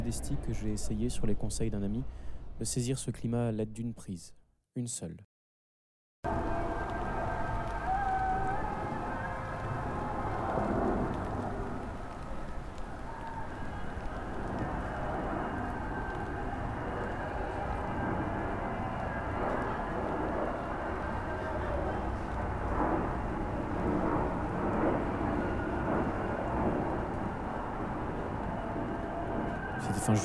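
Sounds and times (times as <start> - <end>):
speech: 0.1 - 5.3, 6.2 - 6.5
airplanes roaring overhead in the rain: 6.3 - 30.2
rain hissing in early summer: 6.3 - 30.2.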